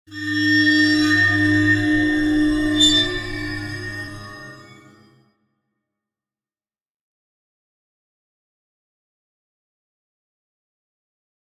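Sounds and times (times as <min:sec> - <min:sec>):
eerie metallic sound: 0:00.1 - 0:05.2.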